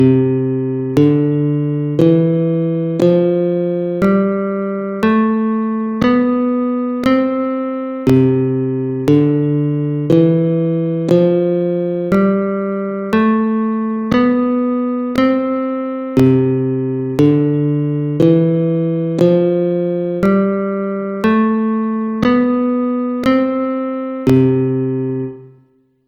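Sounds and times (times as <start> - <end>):
guitar playing C major scales: 0.0 - 25.6.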